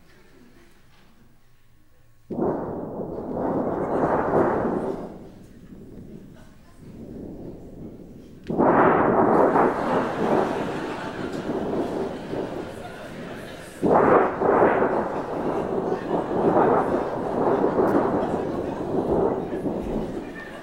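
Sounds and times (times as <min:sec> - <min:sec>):
strong thunderstorm rumble from stage thunder device: 0:02.3 - 0:20.6
laughter: 0:09.4 - 0:20.6.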